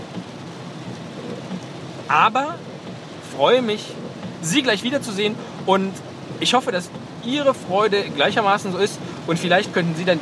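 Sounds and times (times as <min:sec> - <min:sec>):
steady rain pouring: 0:00.0 - 0:10.2
speech: 0:02.1 - 0:02.7, 0:03.4 - 0:10.2.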